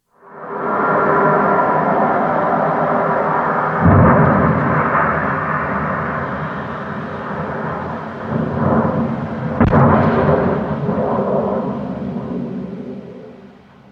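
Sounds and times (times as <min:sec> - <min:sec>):
SpaceX Starship prototype rocket roaring during failed test: 0:00.2 - 0:13.8
sharp explosive bursts during failed rocket test: 0:03.8 - 0:12.7.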